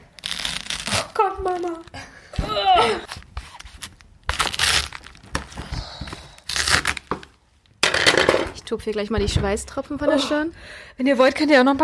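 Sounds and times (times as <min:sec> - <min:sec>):
knife crunching through a dense cabbage: 0:00.0 - 0:01.7, 0:03.0 - 0:05.3, 0:06.4 - 0:07.1
speech: 0:01.2 - 0:03.2, 0:08.7 - 0:11.8.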